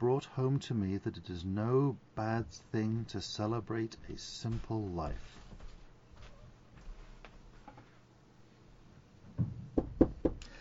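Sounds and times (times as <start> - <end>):
speech: 0.0 - 5.4
faint rustling: 2.5 - 8.1
firm knocks on a wooden door: 9.4 - 10.4.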